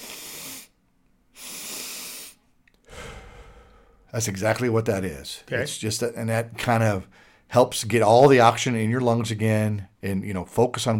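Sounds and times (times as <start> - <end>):
calming breathing, two inhales through the nose and one exhale through the mouth: 0.0 - 4.2, 7.0 - 7.5
speech: 4.1 - 10.9.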